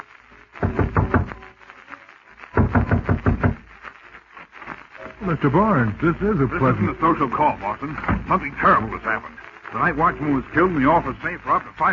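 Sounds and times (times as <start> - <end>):
rapid heavy knocking on a wooden door: 0.6 - 1.3, 2.6 - 3.6
speech: 5.2 - 11.9.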